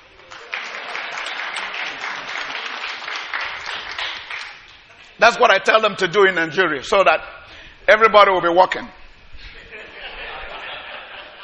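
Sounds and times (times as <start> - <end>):
crowd clapping: 0.0 - 5.0
speech: 5.2 - 9.0
laughter: 9.4 - 11.4.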